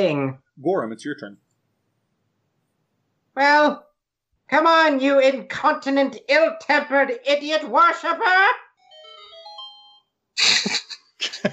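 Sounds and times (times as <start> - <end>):
speech: 0.0 - 1.4, 3.4 - 3.9, 4.5 - 8.6, 10.4 - 10.8
phone electronic ringtone: 8.8 - 10.2.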